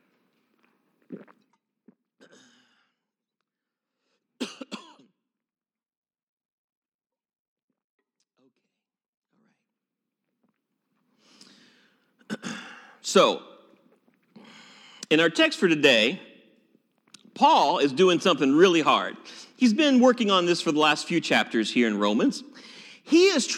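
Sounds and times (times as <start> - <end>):
speech: 1.1 - 1.4, 13.1 - 13.5, 15.1 - 16.3, 17.4 - 23.5
breathy breathing: 2.4 - 3.1, 11.1 - 13.0, 14.3 - 15.1, 19.2 - 19.6, 22.5 - 23.1
person clearing throat: 4.4 - 5.1, 12.2 - 13.0
person coughing: 4.4 - 5.1, 12.2 - 13.0.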